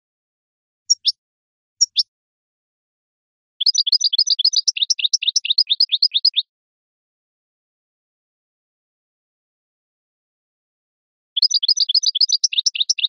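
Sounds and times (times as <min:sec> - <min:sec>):
European goldfinch song of high tinkling twitters: 0:00.9 - 0:01.2, 0:01.8 - 0:02.1, 0:03.6 - 0:06.5, 0:11.4 - 0:13.0.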